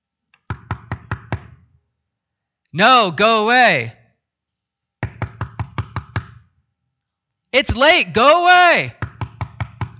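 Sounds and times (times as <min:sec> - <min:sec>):
knocks on a wooden door: 0:00.5 - 0:01.6, 0:05.0 - 0:06.4, 0:08.9 - 0:09.9
speech: 0:02.8 - 0:04.0, 0:07.6 - 0:09.0.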